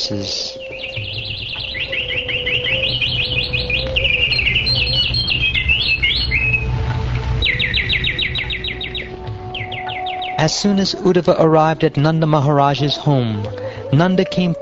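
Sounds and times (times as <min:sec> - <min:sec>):
bees buzzing: 0:00.0 - 0:14.6
flocks of birds chirping and trilling: 0:00.0 - 0:14.6
speech: 0:00.1 - 0:00.6, 0:10.4 - 0:14.6.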